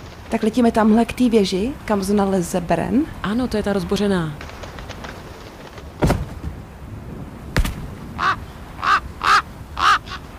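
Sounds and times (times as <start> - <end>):
speech: 0.3 - 4.5
sharp knocking thuds: 5.9 - 6.6, 7.5 - 7.9
crows cawing: 8.2 - 10.3.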